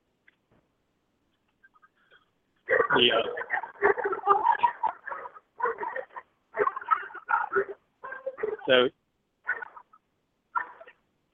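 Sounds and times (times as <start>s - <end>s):
standard poodle barking: 2.7s - 8.7s, 9.4s - 11.0s
speech: 2.9s - 4.0s, 8.7s - 9.0s.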